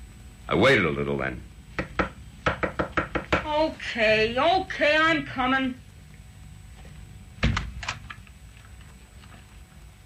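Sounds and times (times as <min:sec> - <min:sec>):
speech: 0:00.5 - 0:01.5, 0:03.6 - 0:05.8
knocking on an apartment door: 0:01.8 - 0:03.6.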